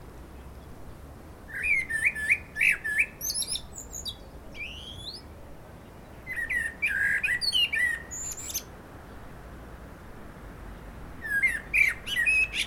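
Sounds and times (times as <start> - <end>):
common blackbird Turdus merula singing with mellow warbling and squeaky twitters: 1.5 - 8.7, 11.2 - 12.6.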